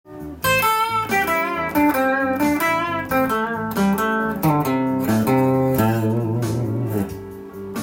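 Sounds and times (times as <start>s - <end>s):
blues guitar solo: 0.1s - 7.6s.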